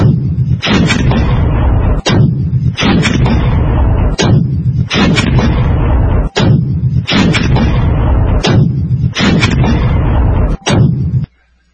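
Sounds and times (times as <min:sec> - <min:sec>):
two 82mm mortars firing heavy shelling: 0:00.0 - 0:11.3.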